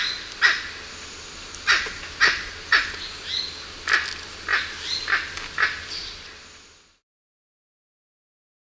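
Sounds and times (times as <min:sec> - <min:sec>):
emerald toucanet giving rough croaking barks in Ecuador: 0:01.6 - 0:06.1.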